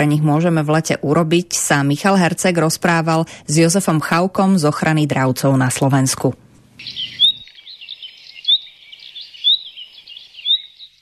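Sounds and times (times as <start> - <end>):
speech: 0.0 - 7.0
birds singing: 6.8 - 10.9.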